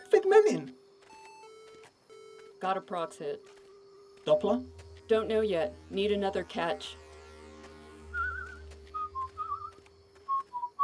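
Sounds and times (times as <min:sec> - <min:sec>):
speech: 0:00.2 - 0:00.8, 0:02.6 - 0:03.6, 0:04.2 - 0:07.0
person whistling a short wavering tune: 0:08.2 - 0:09.7, 0:10.3 - 0:10.8.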